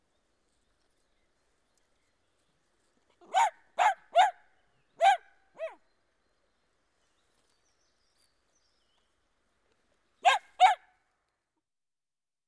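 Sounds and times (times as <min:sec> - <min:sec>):
dachshund barking outdoors: 0:03.2 - 0:04.4, 0:05.0 - 0:05.8, 0:10.2 - 0:10.9.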